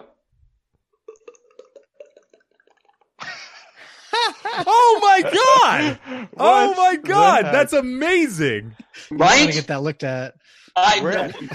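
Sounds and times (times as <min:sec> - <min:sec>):
voice imitating wine glugging into a glass: 0:01.1 - 0:03.0
laughter: 0:03.2 - 0:09.2, 0:11.0 - 0:11.5
speech: 0:04.5 - 0:11.5.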